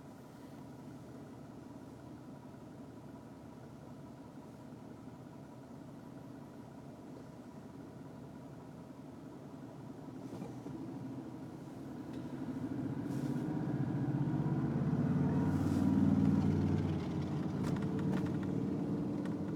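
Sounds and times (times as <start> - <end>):
street traffic rumble on a cold night: 6.4 - 19.5
vehicle passing: 12.7 - 19.5.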